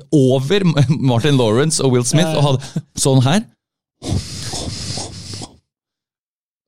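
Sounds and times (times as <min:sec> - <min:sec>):
speech: 0:00.0 - 0:04.4
person imitating loud wet nasal breathing of someone eating: 0:04.0 - 0:05.7.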